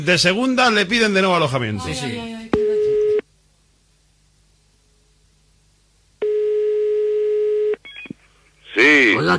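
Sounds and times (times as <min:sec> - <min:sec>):
speech: 0:00.0 - 0:02.4
telephone busy tone after call cut off: 0:02.6 - 0:03.2, 0:06.2 - 0:08.2.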